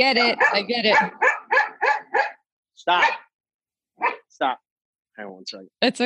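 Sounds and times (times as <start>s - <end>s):
speech: 0.0s - 1.2s, 2.8s - 3.2s, 4.0s - 4.6s, 5.2s - 6.0s
dog barking: 0.1s - 3.4s, 4.0s - 4.3s.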